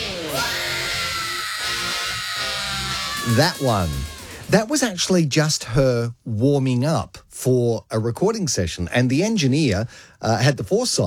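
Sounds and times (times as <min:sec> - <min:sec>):
woman's loud sustained scream launching into a song: 0:00.0 - 0:04.5
speech: 0:03.3 - 0:11.0.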